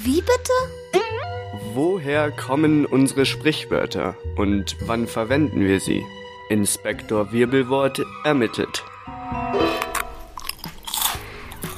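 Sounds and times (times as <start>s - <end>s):
speech: 0.0s - 1.0s, 1.8s - 9.8s
loud wet smacking and crunchy chewing of food: 9.9s - 11.7s.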